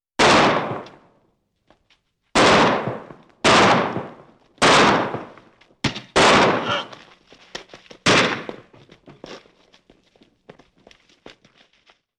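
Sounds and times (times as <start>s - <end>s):
semi-automatic pistol shots: 0.2s - 1.1s, 2.4s - 6.9s, 8.0s - 8.5s.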